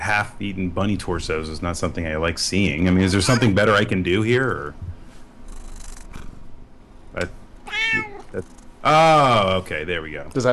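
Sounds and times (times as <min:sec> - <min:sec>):
speech: 0:00.1 - 0:04.9, 0:07.2 - 0:10.5
person imitating a cat meowing: 0:07.7 - 0:08.4.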